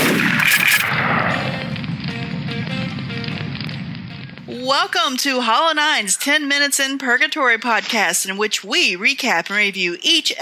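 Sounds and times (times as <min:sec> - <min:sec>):
heavy gunshot from a big gun: 0:00.0 - 0:04.6
speech: 0:04.7 - 0:10.4.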